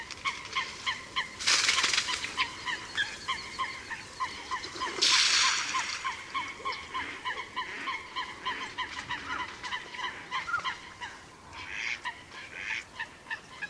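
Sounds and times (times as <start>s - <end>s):
two coots calling in reeds: 0.0s - 13.6s.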